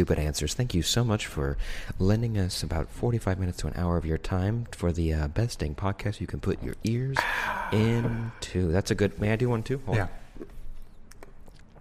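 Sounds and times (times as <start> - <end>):
speech: 0.0 - 10.5
loud gulp: 7.2 - 8.5
wet mouth clicks and smacks: 10.4 - 11.7.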